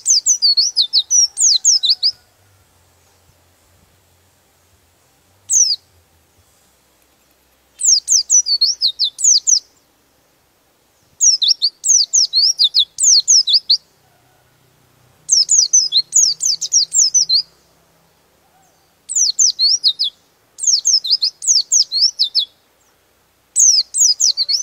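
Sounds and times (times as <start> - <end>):
songbird song: 0.0 - 3.6, 5.2 - 10.3, 10.9 - 14.4, 15.2 - 24.6.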